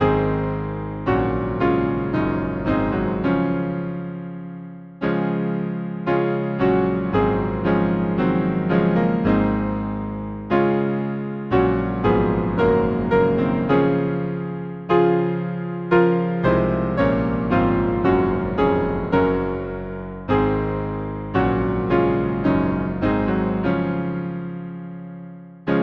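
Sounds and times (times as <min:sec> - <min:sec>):
piano playing a hymn: 0:00.0 - 0:25.8.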